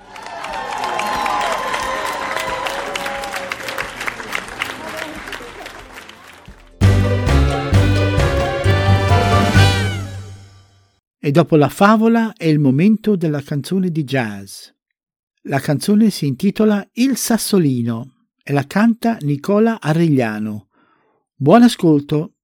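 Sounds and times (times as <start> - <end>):
audience clapping at a children's radio programme after a story reading: 0.0 - 9.9
speech: 11.3 - 14.8, 15.4 - 20.7, 21.4 - 22.4.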